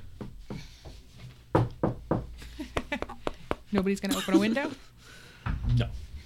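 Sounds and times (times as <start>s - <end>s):
dry knocking on a hard surface imitating a door knock: 1.5s - 2.3s
speech: 3.7s - 4.9s, 5.8s - 6.0s.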